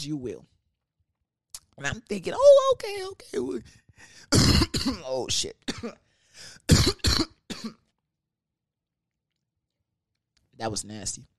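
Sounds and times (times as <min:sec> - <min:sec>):
speech: 0:00.0 - 0:00.6, 0:01.8 - 0:07.8, 0:10.6 - 0:11.3
harsh rasping coughs: 0:04.2 - 0:05.1, 0:05.7 - 0:06.0, 0:06.6 - 0:07.9.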